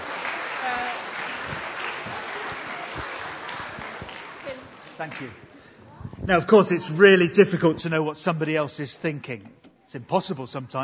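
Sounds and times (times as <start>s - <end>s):
audience applause: 0.0s - 5.4s
speech: 5.0s - 5.5s, 6.3s - 10.8s.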